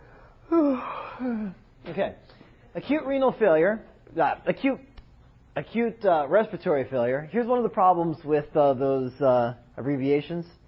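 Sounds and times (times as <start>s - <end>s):
person yawning with a voiced downward-sliding moan: 0.4s - 1.7s
speech: 1.2s - 4.9s, 5.6s - 10.6s.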